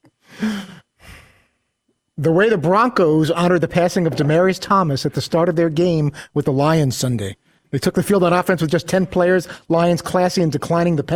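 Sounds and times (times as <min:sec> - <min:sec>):
softer second breath: 0:00.2 - 0:01.7
speech: 0:02.2 - 0:11.1.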